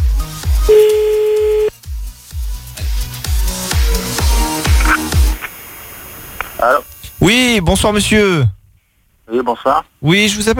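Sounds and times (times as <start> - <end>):
pulsing rhythmic music bed: 0.0 - 5.4
steady telephone tone: 0.7 - 1.7
speech: 7.6 - 8.6, 9.3 - 10.5.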